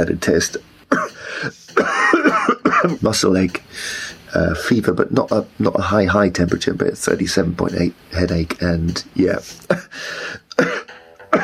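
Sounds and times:
speech: 0:00.0 - 0:02.2, 0:02.8 - 0:11.4
harsh coughs: 0:00.9 - 0:03.0, 0:10.5 - 0:11.4.

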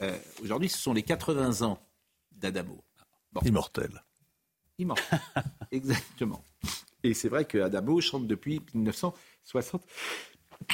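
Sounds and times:
speech: 0:00.0 - 0:04.1, 0:04.8 - 0:10.7
laughter: 0:05.0 - 0:06.1
person sneezing: 0:10.0 - 0:10.7.

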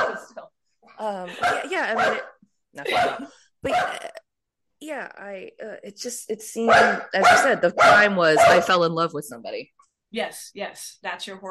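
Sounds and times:
dog barking: 0:00.0 - 0:00.4, 0:01.4 - 0:04.0, 0:06.7 - 0:08.8
speech: 0:01.0 - 0:04.2, 0:04.8 - 0:11.5.

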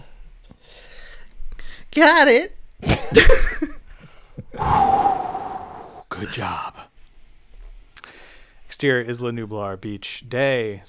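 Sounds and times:
speech: 0:02.0 - 0:03.7, 0:06.2 - 0:06.9, 0:08.8 - 0:10.8
deep growling dinosaur roars: 0:04.6 - 0:06.1.

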